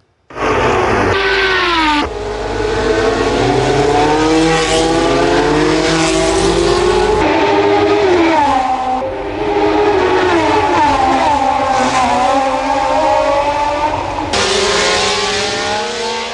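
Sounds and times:
1970s and 80s race car engines roaring as cars accelerate past: 0.0 - 16.3.

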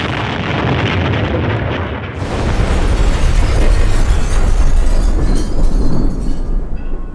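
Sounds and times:
bomb blast with crackling rumble: 0.0 - 5.2
heavy continuous roar: 0.0 - 7.1.

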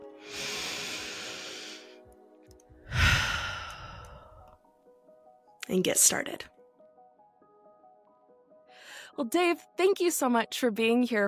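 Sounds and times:
deep breaths: 0.2 - 2.0, 2.8 - 4.6
speech: 5.7 - 6.6, 9.2 - 11.2.

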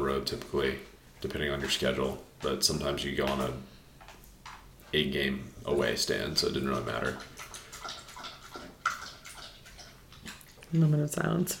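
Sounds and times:
speech: 0.2 - 3.7, 4.9 - 7.5, 10.7 - 11.5
bulldog lapping drinking water: 6.1 - 10.6.

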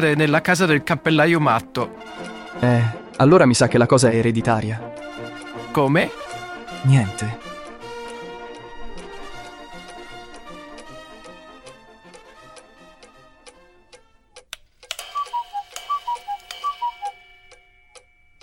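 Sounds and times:
speech: 0.0 - 7.5
clock ticking: 0.0 - 18.4
bright chiming melody of repeated notes: 14.9 - 18.4.

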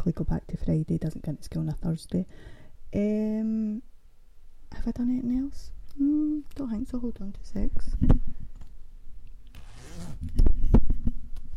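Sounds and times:
speech: 0.0 - 3.9, 4.7 - 8.4, 10.2 - 10.6
jumper zip being pulled down: 9.5 - 10.4.

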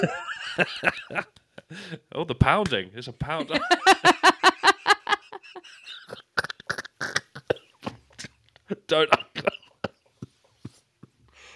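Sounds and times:
laughter: 0.0 - 1.9, 3.3 - 6.6
speech: 0.0 - 4.3, 8.8 - 9.2
person coughing: 9.0 - 10.0.

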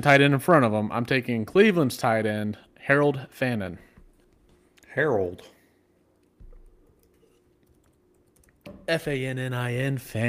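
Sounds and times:
speech: 0.0 - 3.9, 5.0 - 5.6, 8.9 - 10.2
quiet tapping of computer keyboard keys: 6.6 - 8.7.

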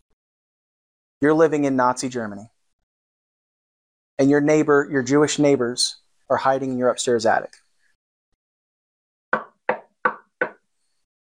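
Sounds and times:
speech: 1.2 - 2.5, 4.2 - 7.6
firm knocking on a door: 9.4 - 10.6.

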